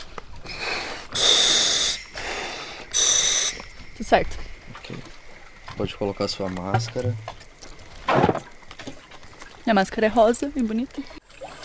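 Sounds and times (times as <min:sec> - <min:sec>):
compressed air hissing from a scuba tank as its valve is opened: 0:00.6 - 0:03.7
speech: 0:04.0 - 0:05.2, 0:05.8 - 0:07.4, 0:09.7 - 0:11.2.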